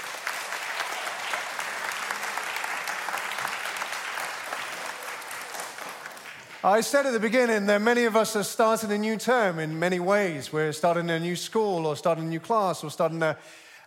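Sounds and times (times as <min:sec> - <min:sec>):
audience applause: 0:00.0 - 0:07.2
speech: 0:06.6 - 0:13.6.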